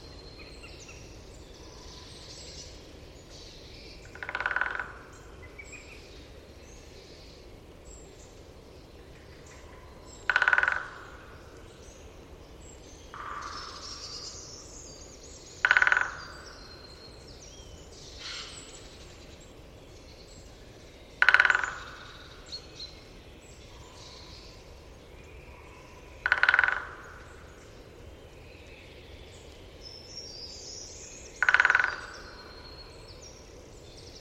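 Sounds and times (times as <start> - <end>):
great spotted woodpecker: 4.0 - 6.0, 9.5 - 12.0, 13.1 - 14.5, 15.6 - 16.8, 21.2 - 22.9, 25.6 - 27.6, 31.1 - 33.2.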